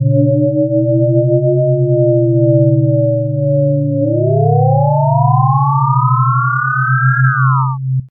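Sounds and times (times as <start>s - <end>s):
thick warble: 0.0s - 8.0s.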